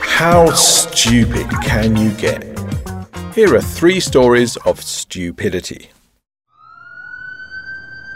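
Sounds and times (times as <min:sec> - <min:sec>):
speech: 0:00.2 - 0:02.5, 0:03.4 - 0:06.0
police car siren wailing: 0:06.5 - 0:08.1.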